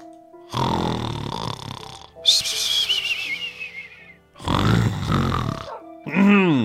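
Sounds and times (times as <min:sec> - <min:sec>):
congested snoring with a stuffy nose: 0:00.5 - 0:02.1, 0:04.4 - 0:05.8
high wavering nasal whistle: 0:02.2 - 0:04.2.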